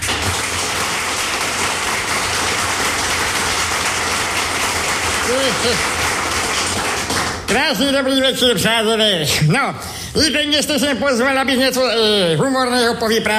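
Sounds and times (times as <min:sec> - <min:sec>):
crowd applauding to welcome a performer: 0:00.0 - 0:08.0
speech: 0:05.3 - 0:06.0, 0:07.5 - 0:13.3.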